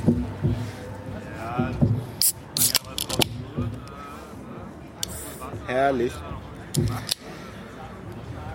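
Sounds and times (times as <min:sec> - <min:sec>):
people murmuring and talking quietly: 0:00.0 - 0:08.5
hissing burst of a drink bottle being opened: 0:02.2 - 0:03.1
drink bottle clicking and crackling while handled: 0:02.2 - 0:04.0
speech: 0:05.8 - 0:07.2.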